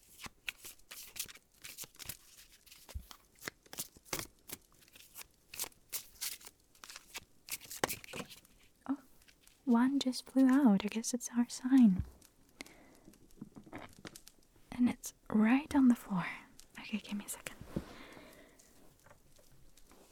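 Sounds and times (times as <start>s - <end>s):
newly opened deck of cards being shuffled gently: 0.0s - 9.6s
speech: 9.7s - 12.2s, 15.4s - 17.5s.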